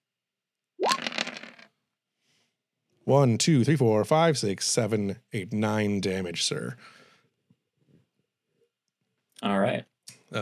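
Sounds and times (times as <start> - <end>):
handful of dice rolled during a tabletop roleplaying game: 0.8 - 1.7
speech: 3.1 - 7.0, 9.4 - 10.4.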